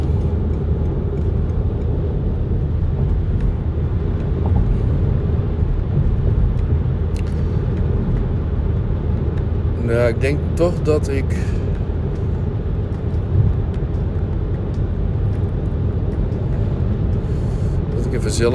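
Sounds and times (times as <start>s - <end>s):
car road rumble at highway speed: 0.0s - 18.5s
speech: 10.1s - 11.6s, 18.1s - 18.5s.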